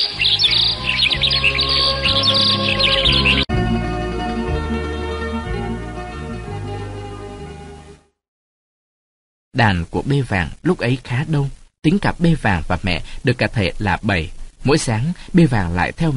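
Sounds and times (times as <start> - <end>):
birds chirping and singing in the morning: 0.0 - 3.5
soft steady music: 0.0 - 8.1
speech: 9.6 - 16.1.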